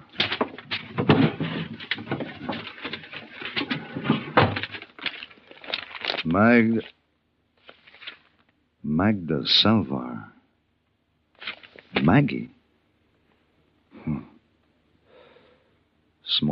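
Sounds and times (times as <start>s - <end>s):
desk drawer sliding open: 0.0s - 5.2s
papers shuffled and rustled: 0.0s - 7.0s, 7.6s - 8.6s, 11.4s - 12.3s
speech: 6.4s - 7.0s, 9.0s - 10.3s, 12.0s - 12.6s.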